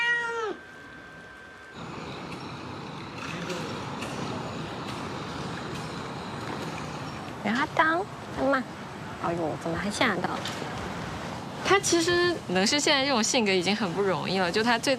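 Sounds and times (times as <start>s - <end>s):
loud cat meow with a falling pitch: 0.0s - 0.6s
steady outdoor traffic: 0.0s - 14.9s
speech: 7.4s - 10.9s, 11.6s - 14.9s.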